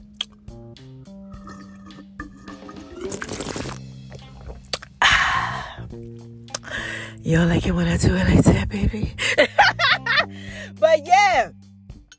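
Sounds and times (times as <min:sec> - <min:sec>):
steady humming musical background: 0:00.0 - 0:12.1
slurping sips of cold apple juice: 0:02.7 - 0:03.8
speech: 0:07.3 - 0:09.9
laughter: 0:09.2 - 0:10.3.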